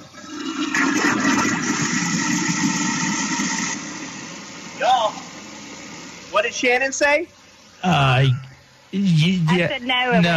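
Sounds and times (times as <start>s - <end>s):
toilet flushing with a 9-volt battery dropped into it: 0.0s - 4.7s
speech: 6.5s - 8.4s, 9.0s - 10.3s.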